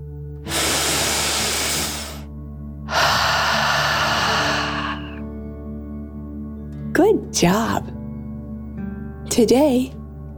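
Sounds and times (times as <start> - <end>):
deep breath in: 0.5 - 2.3, 2.9 - 5.3
speech: 7.0 - 8.0, 9.4 - 10.0.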